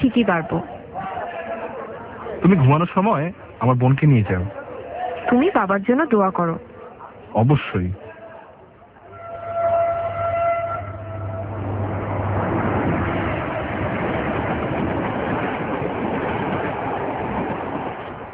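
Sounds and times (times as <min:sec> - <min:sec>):
speech: 0:00.1 - 0:00.8, 0:02.4 - 0:04.6, 0:05.3 - 0:06.7, 0:07.3 - 0:08.0
train horn-like harmonic tone: 0:09.0 - 0:14.0
moving train rumbling and rattling: 0:09.1 - 0:18.3.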